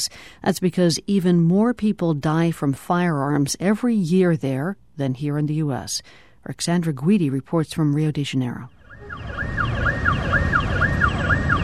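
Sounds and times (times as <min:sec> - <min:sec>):
speech: 0:00.0 - 0:09.5
city street traffic rumble in Rio de Janeiro, Brazil: 0:08.7 - 0:11.6
police car siren yelping in a city street in Rio de Janeiro, Brazil: 0:08.8 - 0:11.6.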